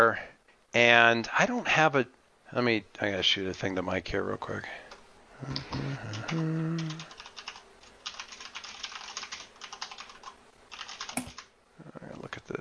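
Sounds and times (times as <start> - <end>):
speech: 0.0 - 4.8, 5.4 - 6.6
short voiced hum or murmur: 5.4 - 7.2
typing on a computer keyboard: 6.1 - 11.5.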